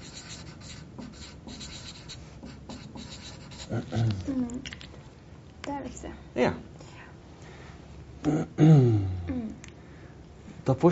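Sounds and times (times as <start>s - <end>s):
pen writing on paper: 0.0s - 3.9s
speech: 3.7s - 4.8s, 5.8s - 6.7s, 8.2s - 8.9s, 10.7s - 10.9s.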